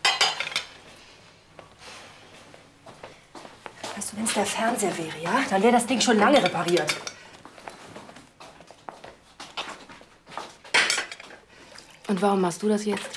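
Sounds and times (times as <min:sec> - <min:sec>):
dishes and cutlery clinking while washed by hand in a kitchen: 0:00.0 - 0:00.8, 0:04.3 - 0:07.2, 0:10.6 - 0:11.4
speech: 0:04.0 - 0:07.1, 0:12.1 - 0:13.1.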